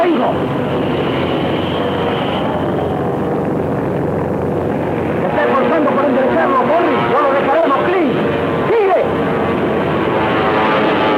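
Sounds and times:
airplane engines roaring in flight: 0.0s - 11.1s.

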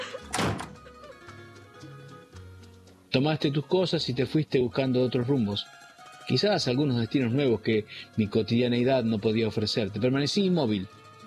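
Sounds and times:
door slamming shut: 0.0s - 0.8s
speech: 3.1s - 11.0s.

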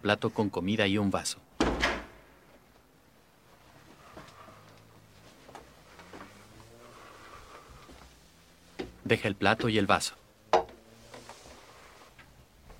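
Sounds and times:
speech: 0.0s - 1.5s, 9.1s - 10.2s
bathroom door creaking: 1.6s - 2.2s
bathroom door opening: 1.6s - 2.3s.

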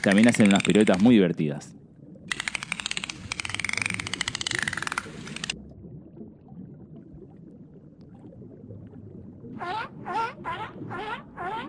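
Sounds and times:
dolphin clicks in a dense rapid buzz: 0.0s - 1.2s, 2.3s - 5.6s
speech: 0.0s - 1.8s
low watery rumble: 0.0s - 11.6s.

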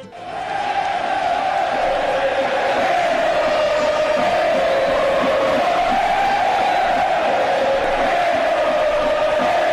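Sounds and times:
huge stadium crowd of football fans cheering in Naples Italy: 0.0s - 9.7s.

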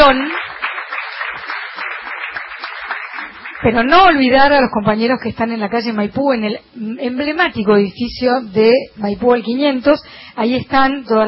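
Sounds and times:
audience in a salon applauding at a live radio show: 0.0s - 4.3s
speech: 0.1s - 1.7s, 3.6s - 11.2s.

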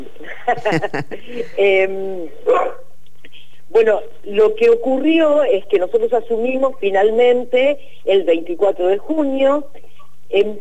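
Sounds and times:
speech: 0.0s - 2.8s, 3.8s - 10.5s
steady low hum: 0.0s - 10.0s
laughter: 0.5s - 1.6s
female dog barking: 2.4s - 2.9s.

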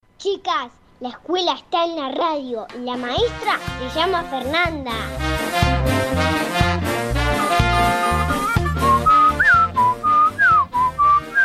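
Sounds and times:
speech: 0.2s - 5.4s
light music: 2.1s - 11.4s
person whistling a short wavering tune: 8.3s - 11.4s.

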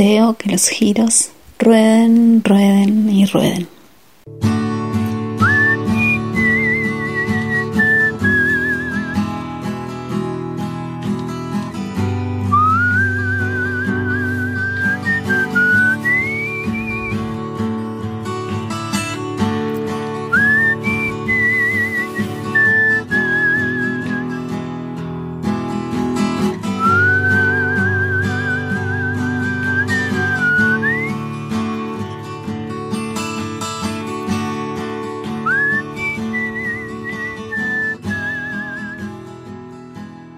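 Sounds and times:
speech: 0.0s - 3.8s
strummed guitar: 4.3s - 40.3s
whistled melody: 5.4s - 9.7s, 12.4s - 17.5s, 20.3s - 24.6s, 26.6s - 31.4s, 35.4s - 39.3s.

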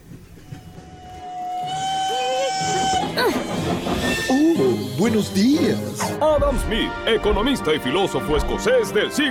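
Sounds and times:
old-fashioned Industrial Revolution era train rumbling: 0.0s - 9.3s
old-fashioned train whistle: 0.4s - 5.4s
speech: 5.0s - 9.3s.

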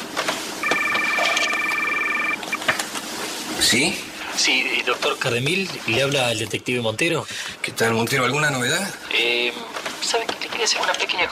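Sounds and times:
cell phone ringing tone during an outgoing call: 0.6s - 2.7s
speech: 3.6s - 11.3s.

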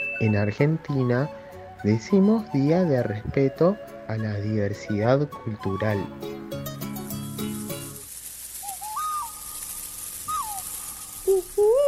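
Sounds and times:
speech: 0.2s - 6.5s
higher whistled calls: 8.6s - 9.6s, 10.2s - 11.8s
owl hooting: 8.6s - 9.6s, 10.3s - 11.8s.

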